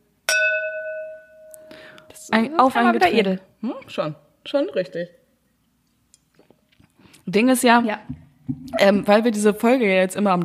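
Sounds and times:
wine glasses clinking in a toast: 0.3s - 1.9s
speech: 2.2s - 5.2s, 7.3s - 10.4s.

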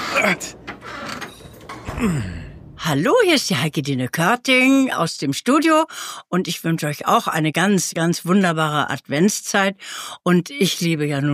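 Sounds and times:
door scraping and creaking as it is pried open: 0.1s - 2.8s
speech: 0.2s - 0.6s, 2.0s - 11.3s
door clunking and rattling as it gives way: 0.5s - 2.8s.

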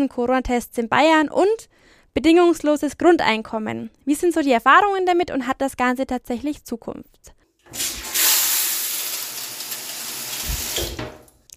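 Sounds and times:
speech: 0.0s - 7.9s
shower water spraying: 7.7s - 11.4s.

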